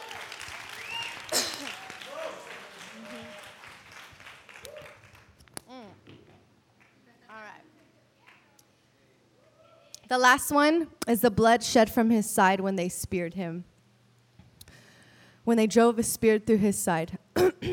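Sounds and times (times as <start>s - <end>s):
audience applause: 0.0s - 5.3s
speech: 10.1s - 13.7s, 15.5s - 17.5s.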